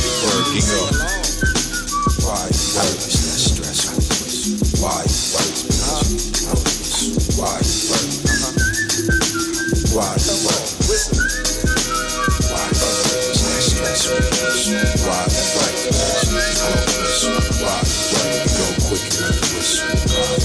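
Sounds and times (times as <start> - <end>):
backing track with punchy drums and deep bass: 0.0 - 20.4
whistled melody: 0.0 - 20.4.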